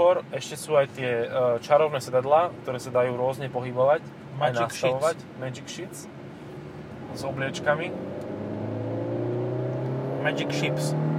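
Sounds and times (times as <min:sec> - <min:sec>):
speech: 0:00.0 - 0:06.2, 0:07.1 - 0:08.2, 0:10.2 - 0:11.1
car engine revving heard from inside the cabin: 0:06.3 - 0:11.1.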